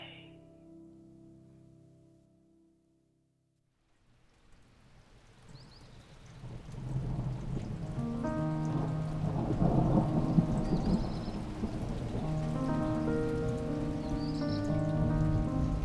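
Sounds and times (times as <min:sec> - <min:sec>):
rain pattering: 0:03.8 - 0:15.8
deep rolling rumble of thunder: 0:06.4 - 0:15.8.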